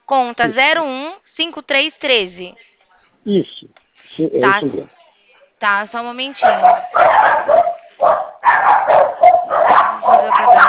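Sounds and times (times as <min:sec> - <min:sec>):
speech: 0:00.1 - 0:05.0, 0:05.6 - 0:10.6
dogs barking down a phone line: 0:06.4 - 0:10.6.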